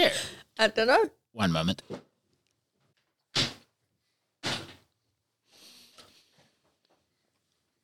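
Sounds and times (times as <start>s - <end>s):
speech: 0.0s - 2.1s
chair thrown onto the floor: 4.4s - 4.8s.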